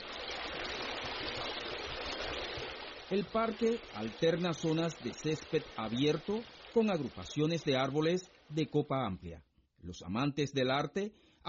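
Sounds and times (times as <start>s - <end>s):
stream flowing through a spa park: 0.0s - 8.9s
speech: 3.1s - 11.4s.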